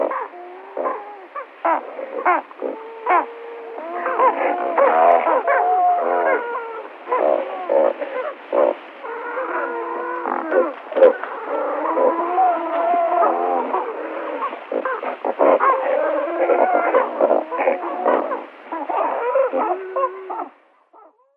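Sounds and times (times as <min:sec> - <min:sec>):
great white pelican chorus of nasal wavering moans and honks: 0:00.0 - 0:20.5.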